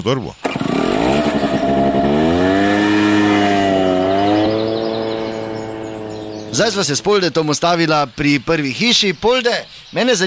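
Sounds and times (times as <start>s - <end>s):
speech: 0.0s - 1.0s, 6.5s - 10.2s
vehicle engine running while driving: 0.6s - 7.4s.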